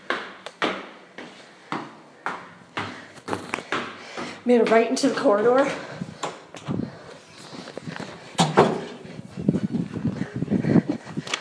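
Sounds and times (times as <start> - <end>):
hurried footsteps: 0.0 - 11.3
speech: 4.5 - 6.0
double doors swinging open and shut: 8.4 - 9.0.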